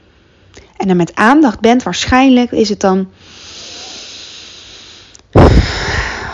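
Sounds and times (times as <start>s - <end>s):
speech: 0.8s - 3.4s
deep breath drawn in sharply through the nose: 3.2s - 6.3s.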